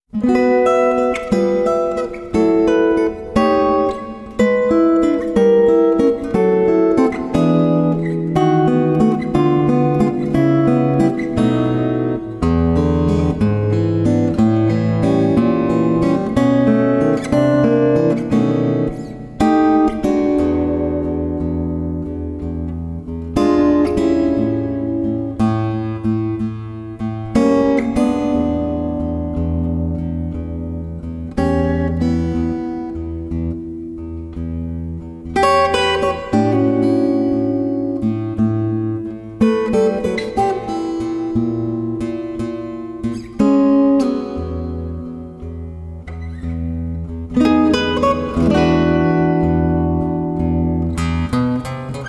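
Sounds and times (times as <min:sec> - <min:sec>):
acoustic blues progressions: 0:00.0 - 0:52.0.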